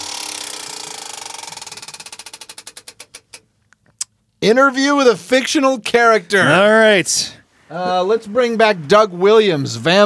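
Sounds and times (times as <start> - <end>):
prize wheel spinning with its pointer clicking: 0.0 - 3.4
speech: 4.4 - 10.0.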